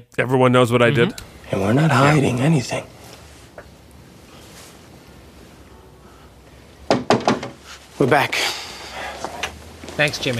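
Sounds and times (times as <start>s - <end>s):
speech: 0.0s - 3.0s, 8.0s - 8.6s, 10.0s - 10.3s
sharp knocks on a door: 6.9s - 7.6s.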